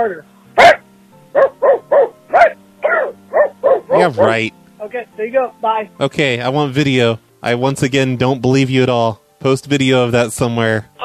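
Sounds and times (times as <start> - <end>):
speech: 0.0 - 1.5, 3.9 - 11.0
faint steady hum: 0.0 - 11.0
dog barking: 0.6 - 4.4.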